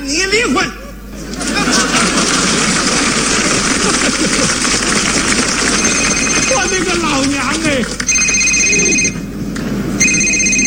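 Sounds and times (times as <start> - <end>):
speech: 0.2 - 0.8
laughter: 0.4 - 8.0
telephone ringing with an incoming call: 5.3 - 10.6.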